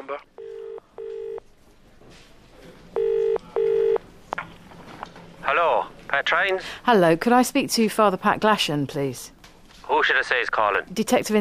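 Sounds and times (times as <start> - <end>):
speech: 0.1 - 0.4, 6.3 - 11.4
telephone ringback tone heard through a handset: 0.4 - 1.4, 3.0 - 4.0.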